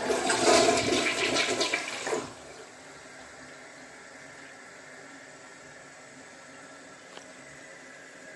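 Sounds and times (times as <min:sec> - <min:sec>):
toilet flushing: 0:00.0 - 0:02.8.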